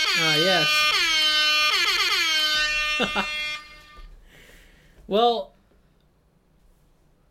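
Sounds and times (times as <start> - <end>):
person imitating a brassy air horn blare: 0.0 - 4.0
speech: 0.2 - 1.0, 3.0 - 3.4, 5.1 - 5.5.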